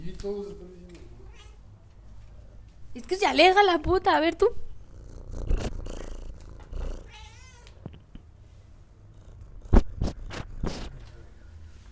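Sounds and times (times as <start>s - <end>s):
speech: 0.2s - 0.8s, 2.9s - 4.6s
kittens purring: 1.2s - 11.4s
kittens meowing while being fed: 7.0s - 8.0s.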